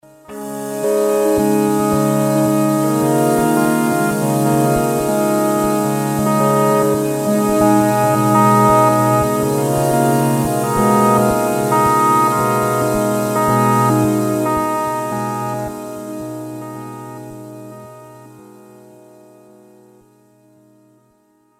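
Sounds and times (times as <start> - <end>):
Roland JD-800 synth pad: 0.2 - 19.2.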